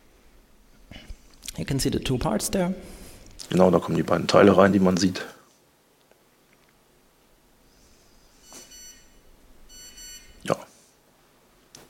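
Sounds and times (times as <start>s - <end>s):
speech: 1.6s - 5.4s
mobile phone beeping on receiving a message with an operator logo: 8.4s - 10.4s.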